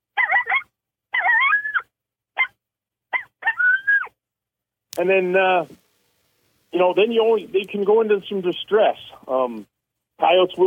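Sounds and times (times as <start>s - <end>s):
imitated coyote challenge barks: 0.1s - 4.1s
speech: 5.0s - 5.8s, 6.7s - 10.6s.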